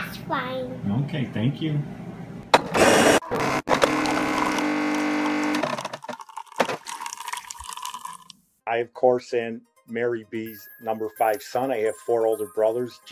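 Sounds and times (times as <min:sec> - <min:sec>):
speech: 0:00.3 - 0:02.1, 0:08.7 - 0:13.0
coffee maker brewing with hiss, gurgle, sputters and drips: 0:02.6 - 0:08.4.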